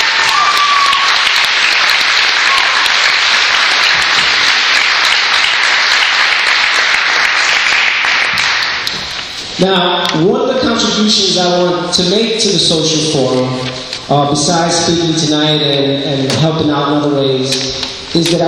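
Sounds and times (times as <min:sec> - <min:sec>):
large audience applause: 0:00.0 - 0:09.1
speech: 0:09.6 - 0:18.4.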